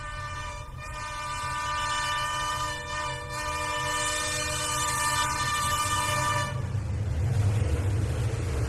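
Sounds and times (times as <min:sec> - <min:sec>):
train horn blaring in a long steady chord: 0:00.0 - 0:06.8
heavy low rumble and clatter of a passing train: 0:00.0 - 0:08.6.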